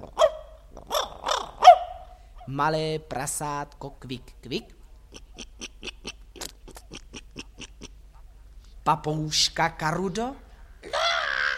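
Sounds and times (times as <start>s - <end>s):
small dog barking: 0.0s - 2.2s
speech: 2.5s - 5.2s, 8.8s - 10.4s.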